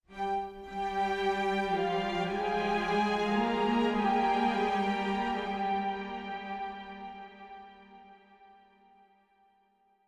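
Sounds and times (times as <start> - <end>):
string music: 0.0 - 8.4.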